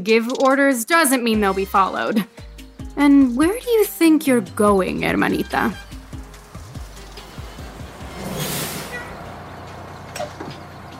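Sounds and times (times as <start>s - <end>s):
speech: 0.0s - 5.8s
bus engine low uneven rumble while pulling up: 4.9s - 10.9s
bus doors clunking open: 7.0s - 10.9s
bus air brakes hissing: 7.2s - 9.5s.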